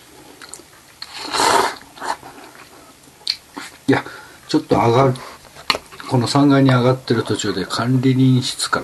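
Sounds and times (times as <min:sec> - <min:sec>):
faint mouth sounds: 0:00.2 - 0:03.9
slurping instant chicken ramen noodles topped with an egg: 0:00.4 - 0:03.8
speech: 0:03.9 - 0:05.3, 0:06.1 - 0:08.8.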